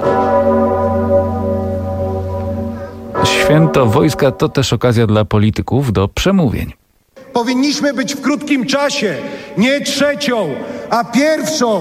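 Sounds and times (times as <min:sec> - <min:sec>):
large 500-year-old church bell tolling on a national armed forces holiday: 0:00.0 - 0:04.9
speech: 0:03.7 - 0:06.8, 0:07.4 - 0:11.7.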